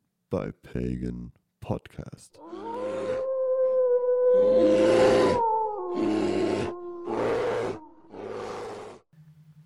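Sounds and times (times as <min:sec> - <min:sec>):
speech: 0:00.3 - 0:02.6, 0:04.4 - 0:05.2
bear roaring: 0:02.4 - 0:09.0
wolf howling: 0:02.4 - 0:09.0.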